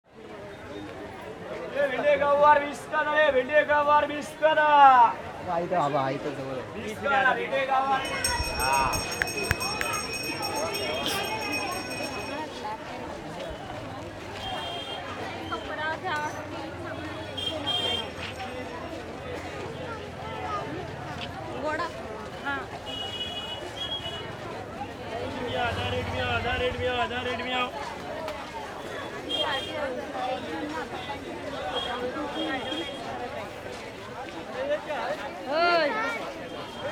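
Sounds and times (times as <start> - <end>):
market ambience in Kerala India: 0.1 - 36.9.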